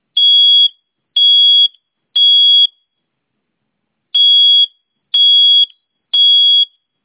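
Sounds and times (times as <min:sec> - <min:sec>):
smoke alarm: 0:00.2 - 0:03.0, 0:04.2 - 0:06.9.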